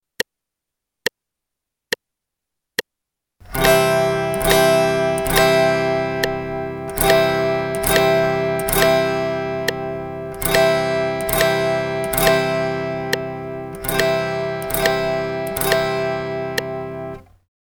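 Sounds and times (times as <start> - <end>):
guitar strumming G and C in quarter notes: 3.4 - 17.3.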